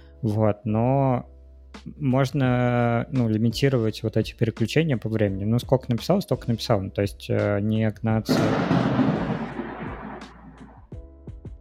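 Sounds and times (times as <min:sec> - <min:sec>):
speech: 0:00.2 - 0:09.2
deep rolling rumble of thunder: 0:08.3 - 0:10.8.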